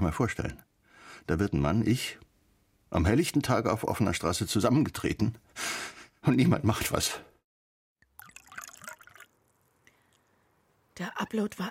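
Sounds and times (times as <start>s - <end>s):
speech: 0.1s - 2.2s, 2.9s - 7.3s, 11.0s - 11.6s
herbal liqueur pouring into a glass: 8.0s - 10.3s.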